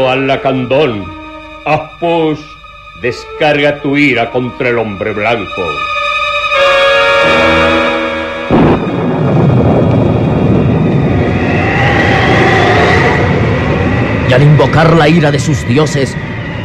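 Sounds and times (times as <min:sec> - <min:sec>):
speech: 0:00.0 - 0:06.0, 0:14.3 - 0:16.3
rumble of thunder: 0:07.0 - 0:16.6
wind rushing through trees: 0:07.2 - 0:16.6.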